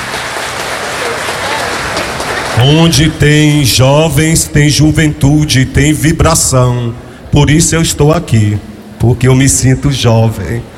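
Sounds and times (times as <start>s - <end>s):
audience at a church youth gathering applauding: 0.0s - 3.6s
speech: 2.6s - 10.7s.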